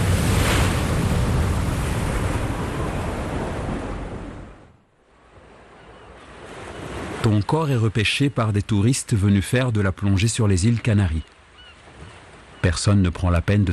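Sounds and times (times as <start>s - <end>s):
wind noise in a thunderstorm at sea: 0.0s - 4.7s
gigantic ocean waves crashing in a thunderstorm at sea: 0.0s - 13.7s
speech: 7.2s - 11.4s, 12.6s - 13.7s.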